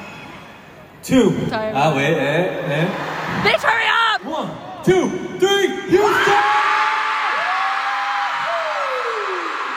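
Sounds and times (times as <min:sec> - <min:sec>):
speech: 0:01.0 - 0:06.5
huge concert crowd screaming: 0:06.0 - 0:09.7
whoops: 0:06.3 - 0:09.7.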